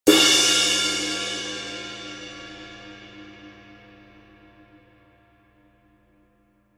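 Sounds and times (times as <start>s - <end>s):
20in crash ride cymbal: 0.1s - 4.0s.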